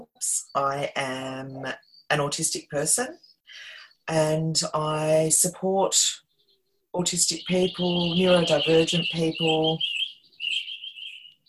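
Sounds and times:
bird chirping: 0.0s - 11.4s
speech: 0.2s - 6.2s, 6.9s - 10.0s.

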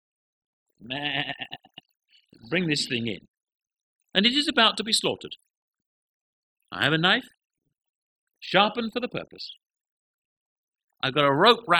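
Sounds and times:
speech: 0.8s - 1.6s, 2.4s - 3.3s, 4.2s - 5.5s, 6.7s - 7.4s, 8.4s - 9.6s, 11.0s - 11.7s
goat bleating: 0.8s - 1.8s.

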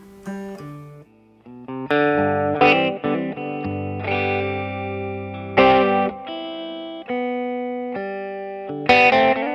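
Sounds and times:
clean electric guitar tone through an amp with a little gain and lush reverb: 0.0s - 9.5s.

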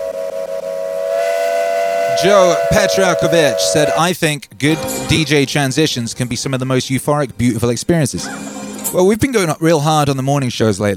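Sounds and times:
loud sustained train whistle blowing: 0.0s - 4.1s
speech: 2.2s - 10.9s.

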